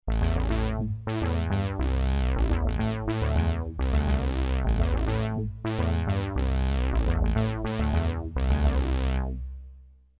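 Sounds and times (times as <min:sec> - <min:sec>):
vintage Yamaha TG500 polyphonic synthesizer: 0:00.0 - 0:09.7.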